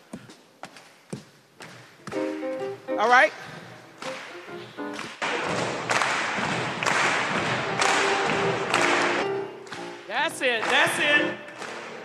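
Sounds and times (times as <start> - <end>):
audience stomping feet: 0.1 - 2.7, 3.4 - 12.0
speech: 3.0 - 3.4
audience clapping hands: 4.0 - 12.0.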